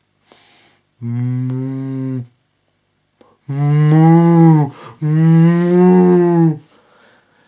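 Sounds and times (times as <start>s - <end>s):
person imitating a distressed cow mooing: 1.0s - 2.3s, 3.5s - 6.6s.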